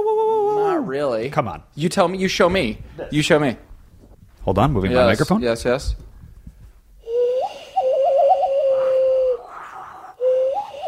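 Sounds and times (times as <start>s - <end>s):
speech: 0.9s - 3.7s, 4.4s - 6.1s
hollow breathy whistling through cupped hands: 7.0s - 10.8s.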